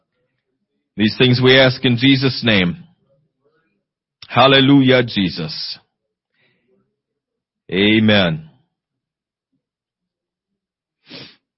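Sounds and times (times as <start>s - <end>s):
speech: 1.0s - 2.8s, 4.3s - 5.8s, 7.7s - 8.5s
single sharp sneeze: 11.1s - 11.4s.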